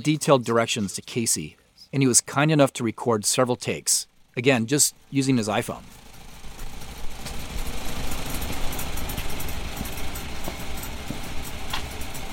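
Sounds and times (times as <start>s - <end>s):
speech: 0.0s - 6.0s
old Farmall Model A farm tractor engine running on a farm: 4.1s - 12.3s.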